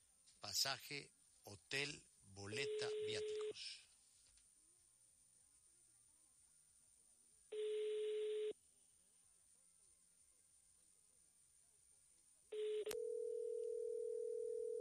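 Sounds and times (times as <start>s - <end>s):
speech: 0.4s - 3.9s
telephone ringback tone on an unanswered call to a contest winner: 7.5s - 8.6s, 12.5s - 14.7s.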